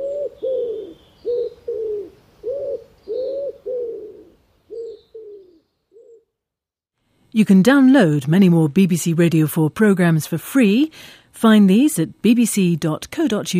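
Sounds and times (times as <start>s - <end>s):
wood pigeon cooing: 0.0s - 6.3s
speech: 7.4s - 13.5s.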